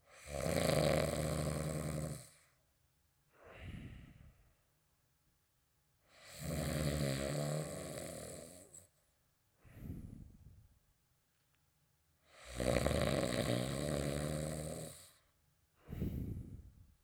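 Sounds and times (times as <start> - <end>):
snoring: 0.0 - 2.5, 6.1 - 8.9, 12.3 - 15.2.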